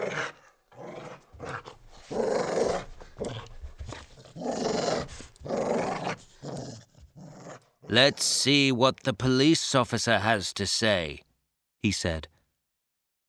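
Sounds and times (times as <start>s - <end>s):
dog growling: 0.0s - 8.3s
speech: 7.9s - 11.2s, 11.8s - 12.3s.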